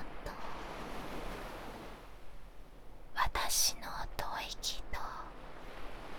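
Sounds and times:
ocean waves: 0.0s - 6.1s.

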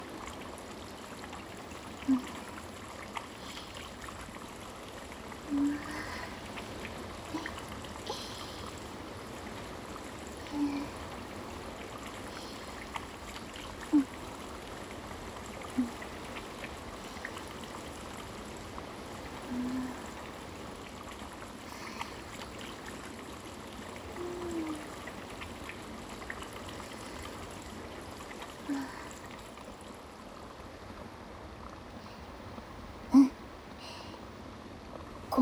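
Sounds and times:
towel splashing and gurgling in spring water: 0.0s - 30.5s
flowing spring water trickling: 0.0s - 35.3s.

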